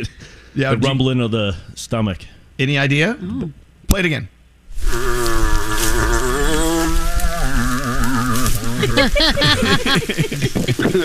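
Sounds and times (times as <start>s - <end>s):
speech: 0.0s - 5.2s, 8.8s - 11.0s
moose call: 4.8s - 9.5s
laughter: 8.4s - 11.0s.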